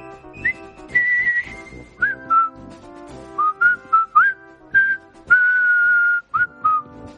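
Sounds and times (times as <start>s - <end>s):
bright clear whistled march melody: 0.0s - 7.1s
rhythmic band accompaniment: 0.0s - 7.1s.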